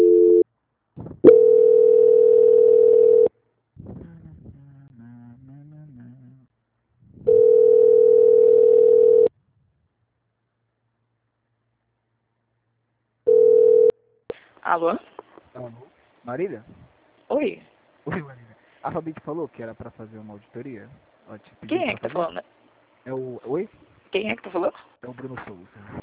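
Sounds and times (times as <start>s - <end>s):
telephone ringback tone while a call is being transferred: 0.0s - 0.4s, 1.3s - 3.3s, 7.3s - 9.3s, 13.3s - 14.0s
speech: 14.8s - 15.0s, 16.4s - 26.0s.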